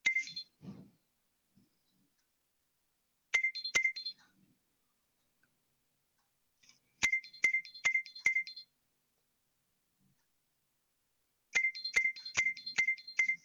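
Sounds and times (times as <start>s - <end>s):
Nokia 6100 mobile phone ringtone: 0.1s - 0.5s, 3.4s - 4.1s, 7.0s - 8.6s, 11.6s - 13.4s.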